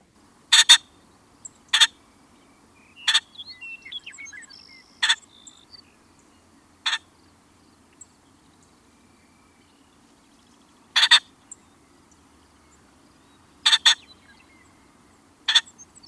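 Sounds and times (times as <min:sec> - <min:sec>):
ring-necked pheasant giving harsh crowing squawks: 0:00.5 - 0:01.0, 0:01.6 - 0:05.7, 0:06.8 - 0:07.2, 0:10.9 - 0:11.4, 0:13.4 - 0:16.0
faint chirps: 0:00.8 - 0:16.0.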